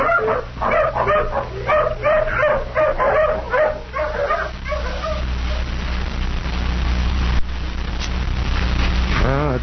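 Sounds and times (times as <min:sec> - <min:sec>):
tracking hound barking and yipping while following a scent: 0:00.0 - 0:05.7
low steady rumble of noise: 0:00.0 - 0:09.6.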